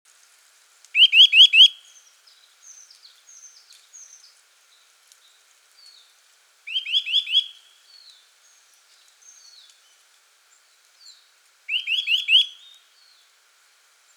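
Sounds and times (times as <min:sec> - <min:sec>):
Eurasian nuthatch calls of rapid notes: 0:01.0 - 0:01.7, 0:06.7 - 0:07.5, 0:11.7 - 0:12.7.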